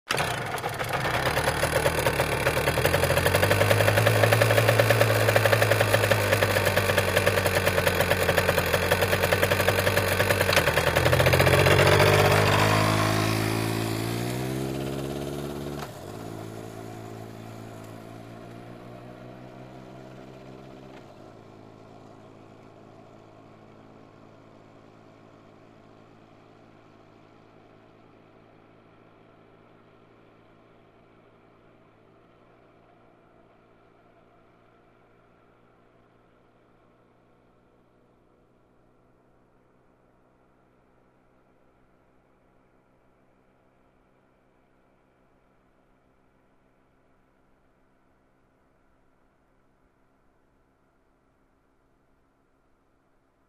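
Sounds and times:
motorcycle starting: 0.1s - 22.9s
motorcycle idling: 0.1s - 37.1s.

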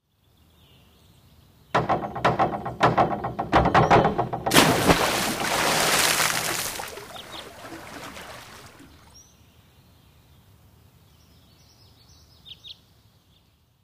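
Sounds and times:
springboard diving: 1.8s - 9.1s.

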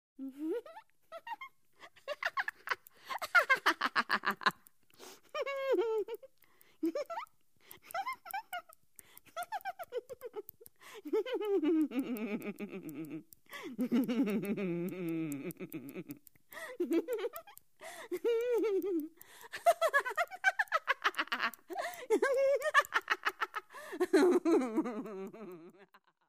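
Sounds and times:
woman laughing: 0.2s - 26.2s.

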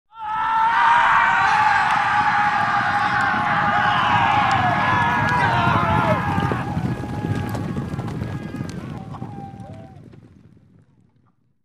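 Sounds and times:
cavalry riders shouting: 0.1s - 10.0s
cavalry horses being ridden: 0.6s - 11.4s.

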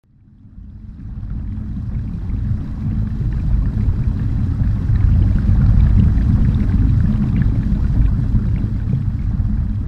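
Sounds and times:
submarine sailing underwater: 0.1s - 9.8s.

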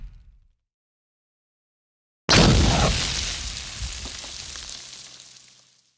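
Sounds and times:
energy blast explosions: 2.3s - 4.3s.

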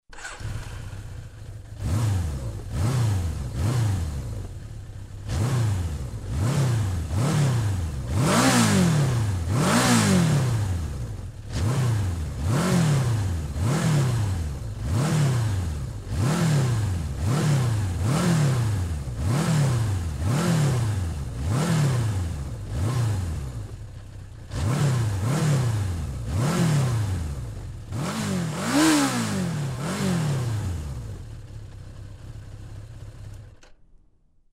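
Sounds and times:
motorcycle starting and revving: 0.0s - 33.7s.

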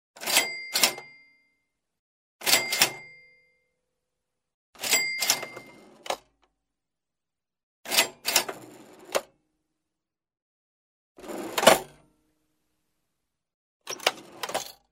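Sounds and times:
old cash register: 0.2s - 1.3s, 2.4s - 3.3s, 4.8s - 6.4s, 7.9s - 9.3s, 11.2s - 12.1s, 13.8s - 14.8s.

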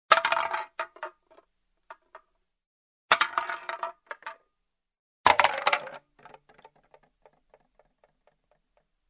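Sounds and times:
falling tin can tableware: 0.1s - 1.4s, 3.1s - 4.4s, 5.3s - 8.5s.

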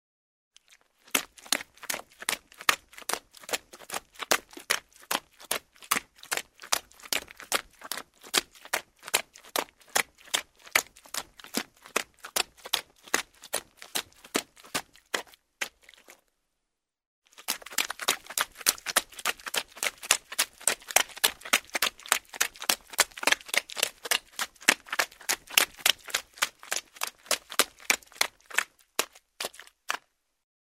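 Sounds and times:
running in the mud: 0.6s - 16.2s, 17.3s - 30.2s.

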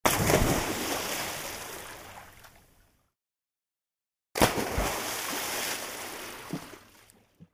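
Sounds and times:
jump into the water splash: 0.0s - 2.5s, 4.4s - 7.0s.

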